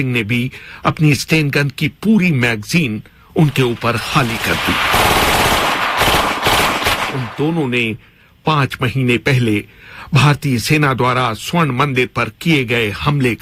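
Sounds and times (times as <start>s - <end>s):
speech: 0.0s - 5.2s, 7.1s - 13.4s
submachine gun emptying a full magazine in automatic fire: 3.5s - 7.7s.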